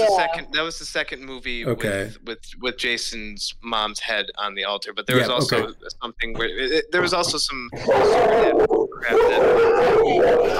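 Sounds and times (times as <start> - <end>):
speech: 0.0 - 10.5
hounds howling: 7.8 - 10.5.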